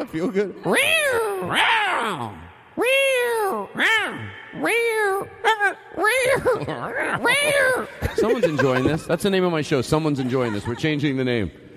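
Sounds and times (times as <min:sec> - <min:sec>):
speech: 0:00.0 - 0:11.6
person imitating cat meows with echo effect: 0:00.7 - 0:07.9
laughter: 0:06.0 - 0:11.5.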